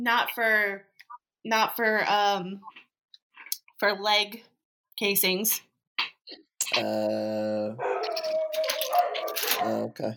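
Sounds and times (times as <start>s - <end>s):
speech: 0.0s - 2.8s, 3.8s - 10.1s
dogs barking and howling: 7.8s - 10.1s.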